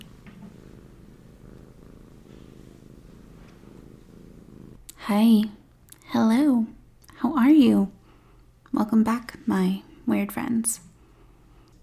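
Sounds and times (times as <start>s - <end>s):
cat purring loudly: 0.0s - 5.0s
speech: 5.1s - 6.7s, 7.4s - 8.0s, 8.8s - 10.9s.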